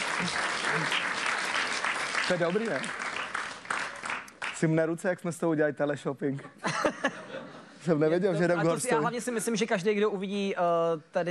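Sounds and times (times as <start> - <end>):
audience applauding: 0.0 - 4.8
speech: 0.2 - 1.2, 2.3 - 3.1, 4.6 - 11.3
laughter: 6.6 - 8.8.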